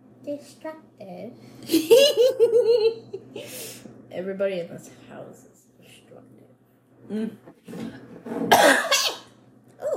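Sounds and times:
speech: 0.2s - 5.6s, 7.0s - 8.9s
person coughing: 8.5s - 9.3s.

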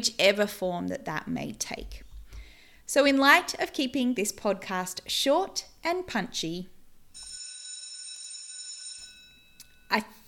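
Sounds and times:
speech: 0.0s - 2.1s, 2.9s - 6.7s, 9.9s - 10.2s
electric school morning tea bell ringing: 7.2s - 10.1s.

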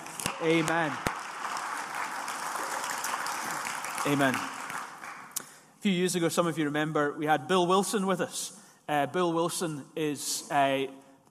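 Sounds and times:
congregation applauding: 0.0s - 5.4s
speech: 0.4s - 1.1s, 4.0s - 4.6s, 5.8s - 11.0s.

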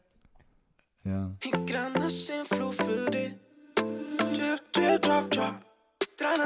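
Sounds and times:
speech: 1.0s - 2.8s, 5.1s - 6.4s
pop song: 1.4s - 6.4s.

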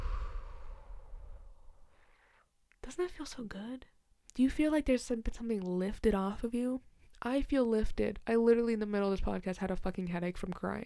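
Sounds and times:
deep breath in and out: 0.0s - 2.5s
speech: 2.9s - 10.8s.

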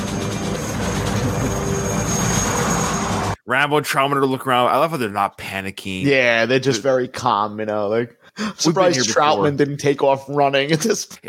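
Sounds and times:
big helicopter engine and rotor roaring: 0.0s - 3.4s
speech: 3.5s - 11.2s.

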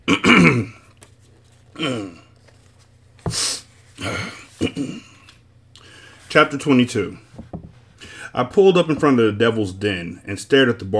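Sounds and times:
person clearing throat with gravelly rasps: 0.0s - 0.9s, 1.8s - 2.3s, 4.0s - 5.3s
faint steady hum: 0.0s - 10.9s
speech: 6.3s - 7.4s, 8.4s - 10.9s.

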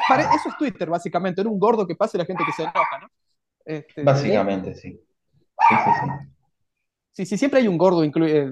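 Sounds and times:
dog barking: 0.0s - 0.6s, 2.4s - 3.1s, 5.6s - 6.3s
speech: 0.1s - 5.1s, 5.7s - 6.4s, 7.2s - 8.4s.

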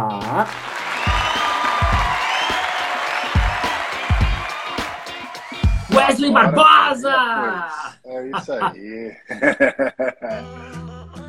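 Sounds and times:
speech: 0.0s - 0.8s, 6.0s - 11.2s
crowd applauding: 0.2s - 6.3s
crowd cheers and whoops: 0.6s - 7.4s
laughter: 0.8s - 10.5s.

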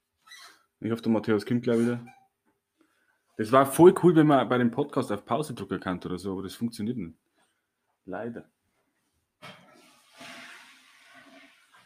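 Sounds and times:
speech: 0.8s - 2.2s, 3.4s - 7.3s, 8.0s - 8.6s
toilet flushing: 9.4s - 11.8s.

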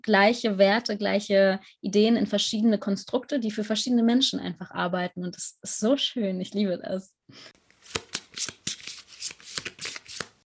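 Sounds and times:
speech: 0.0s - 8.6s
tarot cards being handled and flipped over: 7.6s - 10.4s.

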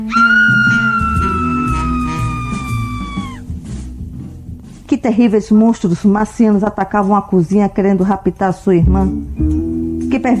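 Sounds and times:
long piercing high-pitched horrifying scream: 0.1s - 3.4s
speech: 5.0s - 9.5s, 10.2s - 10.3s.

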